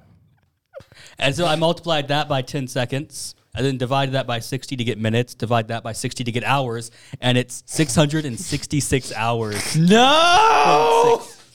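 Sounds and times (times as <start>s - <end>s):
speech: 0.9s - 11.4s
loud drawn-out voiced groaning yawn: 9.5s - 11.4s.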